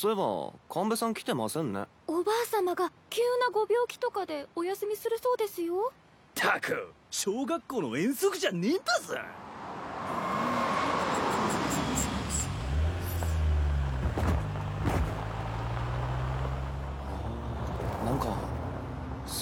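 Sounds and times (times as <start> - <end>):
speech: 0.0 - 9.5
large vehicle heavy engine rumbling as it pulls up: 10.4 - 19.4.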